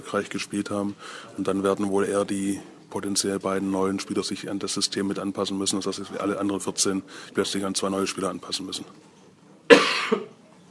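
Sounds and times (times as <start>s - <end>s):
speech: 0.1s - 9.2s
person coughing close to the microphone: 9.7s - 10.4s.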